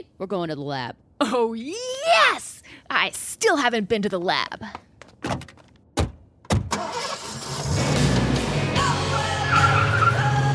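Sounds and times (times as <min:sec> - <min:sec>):
speech: 0:00.2 - 0:04.9
car engine starting: 0:06.6 - 0:10.5
tyres skidding: 0:06.8 - 0:10.5.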